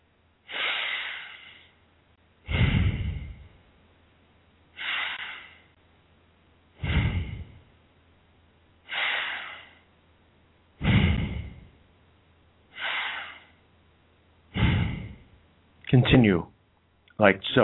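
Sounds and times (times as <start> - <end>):
slow deep breathing with full inhales and exhales: 0.5 - 1.8, 2.4 - 3.6, 4.7 - 5.8, 6.7 - 7.8, 8.8 - 9.9, 10.8 - 11.8, 12.7 - 13.6, 14.5 - 15.4
speech: 15.9 - 16.5, 17.2 - 17.6.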